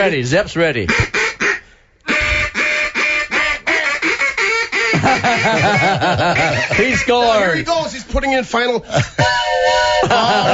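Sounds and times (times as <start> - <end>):
speech: 0.0 - 1.2, 5.0 - 9.5, 10.1 - 10.5
duck call blown imitating duck quacks: 0.9 - 7.5
laughter: 4.8 - 7.6, 8.8 - 10.5.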